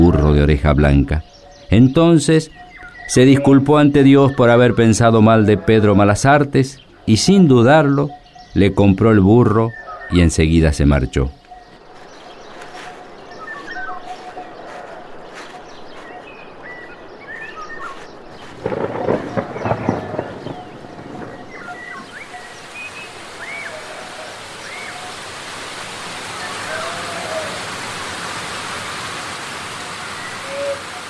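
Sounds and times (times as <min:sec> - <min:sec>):
speech: 0:00.4 - 0:11.4
sudden rain shower over a village: 0:12.0 - 0:31.0
brief rumbling burst: 0:18.6 - 0:22.2.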